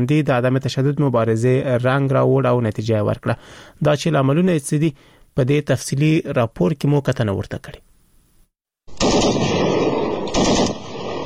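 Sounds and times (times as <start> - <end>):
speech: 0.0 - 7.9
explosions in a clash between Afghan and Pakistani border forces along the Durand Line: 8.9 - 11.2
gunfire in a clash between Afghan and Pakistani border forces along the Durand Line: 8.9 - 11.2.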